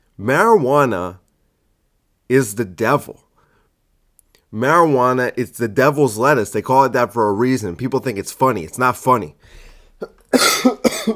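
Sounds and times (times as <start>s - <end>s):
speech: 0.2s - 1.2s, 2.3s - 3.2s, 4.5s - 11.1s
harsh raspy cough: 10.0s - 11.1s.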